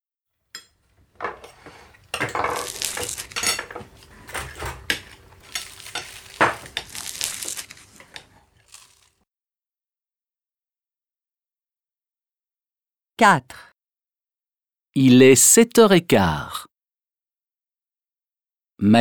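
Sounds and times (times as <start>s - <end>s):
dishes and cutlery clattering as a family eats breakfast: 0.6s - 9.0s
stirring during breakfast: 0.6s - 9.1s
speech: 13.2s - 13.7s, 14.9s - 16.7s, 18.8s - 18.9s.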